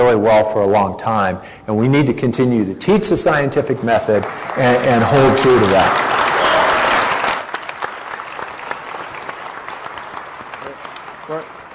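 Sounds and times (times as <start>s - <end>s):
speech: 0.0s - 6.2s
crowd applauding: 3.6s - 11.7s.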